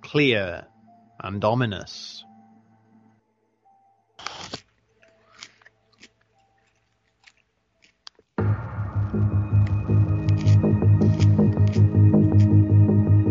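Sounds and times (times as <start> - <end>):
speech: 0.1 - 2.3
biting a raw carrot: 4.2 - 13.0
chewing and munching raw carrot: 4.2 - 13.0.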